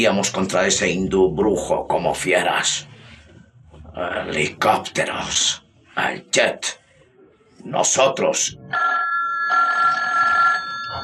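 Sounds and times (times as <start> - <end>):
speech: 0.0 - 3.0, 4.0 - 6.8, 7.6 - 9.0
telephone ringing: 8.7 - 11.0.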